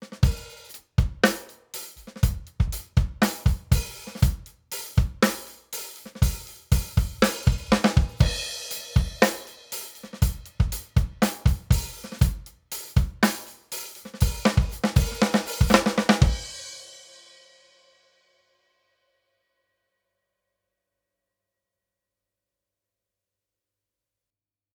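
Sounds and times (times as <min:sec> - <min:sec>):
drum bus through API Audio 2500 without compression: 0:00.0 - 0:18.0.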